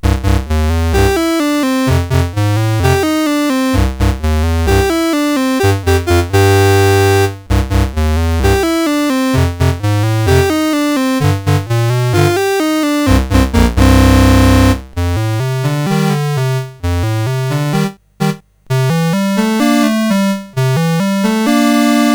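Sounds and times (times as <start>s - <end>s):
boogie tune on CSG8580R5 chip: 0.0s - 22.1s.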